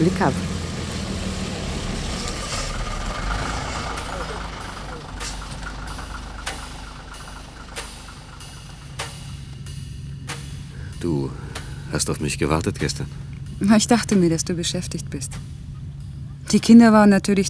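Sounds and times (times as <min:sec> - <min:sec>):
speech: 0:00.0 - 0:00.5, 0:11.0 - 0:15.5, 0:16.5 - 0:17.4
city bus engine idling: 0:00.0 - 0:17.1
hissing or clicking bursts: 0:00.4 - 0:12.2.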